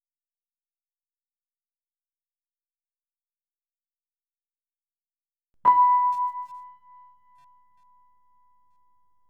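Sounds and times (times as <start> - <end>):
piano note B5: 5.7 - 7.4
faded quiet sine tone: 5.7 - 8.1.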